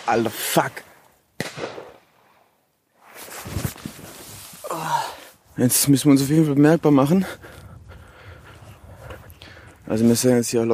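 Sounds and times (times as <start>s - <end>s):
speech: 0.1s - 0.9s, 1.6s - 1.8s, 5.6s - 7.6s, 9.9s - 10.7s
shotgun fired at rabbits in a field: 1.4s - 2.1s.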